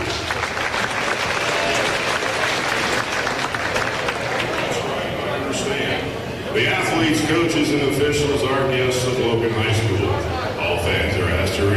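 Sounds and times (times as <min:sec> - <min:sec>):
large crowd applauding: 0:00.0 - 0:05.0
faint murmur of voices: 0:01.2 - 0:11.7
speech: 0:06.6 - 0:11.7.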